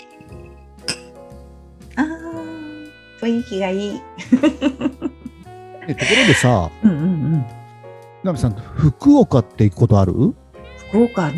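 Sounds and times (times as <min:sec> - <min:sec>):
glasses clinked in a toast at an izakaya in Japan: 0:00.0 - 0:01.2
speech: 0:03.2 - 0:05.0, 0:05.9 - 0:07.6, 0:08.2 - 0:11.3
laughter: 0:04.2 - 0:07.2
soft murmuring at an izakaya: 0:05.8 - 0:07.5.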